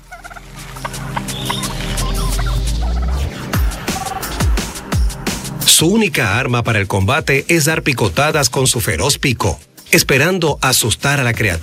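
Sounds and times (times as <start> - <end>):
brush turkey gobbling and swooping calls: 0.0 - 4.4
speech: 5.8 - 11.6.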